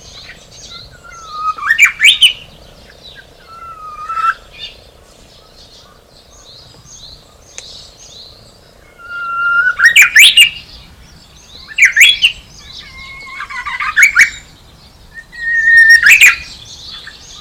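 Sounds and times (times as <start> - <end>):
Japanese bush warbler singing rising whistled phrases with abrupt bursts: 0.0 - 17.4
faint chirps of other birds: 0.0 - 17.4.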